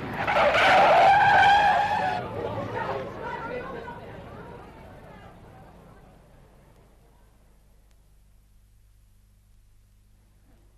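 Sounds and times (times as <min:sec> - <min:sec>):
car tires screeching as it skids and brakes hard: 0:00.0 - 0:03.0.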